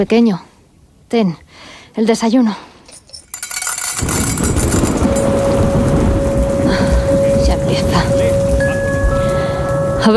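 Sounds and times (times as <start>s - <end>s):
speech: 0.0s - 0.5s, 1.1s - 2.7s
heavy rain in a large electrical thunderstorm: 3.8s - 10.1s.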